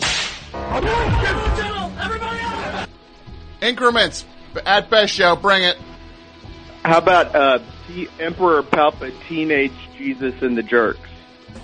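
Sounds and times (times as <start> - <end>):
whip cracks: 0.0 - 0.6
speech: 0.7 - 2.8, 3.6 - 5.9, 6.8 - 11.6.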